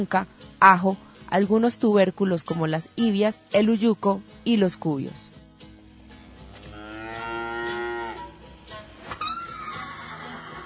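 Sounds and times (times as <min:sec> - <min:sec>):
speech: 0:00.0 - 0:05.3
outdoor farm noise: 0:06.5 - 0:08.4
cow mooing: 0:06.7 - 0:08.3.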